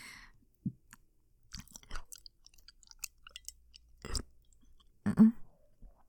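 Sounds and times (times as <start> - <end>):
wet licking and tasting: 0.9 - 5.0.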